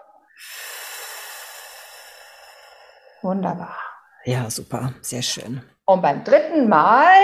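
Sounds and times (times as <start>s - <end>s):
forceful exhale during a breathing exercise: 0.3s - 3.3s
speech: 3.2s - 7.2s.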